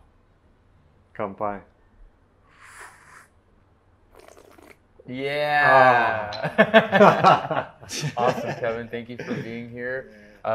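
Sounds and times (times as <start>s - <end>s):
speech: 1.2s - 1.7s, 5.1s - 10.5s
slurping sips of hot tea: 2.5s - 3.3s, 4.1s - 4.8s
laughter: 5.7s - 10.1s.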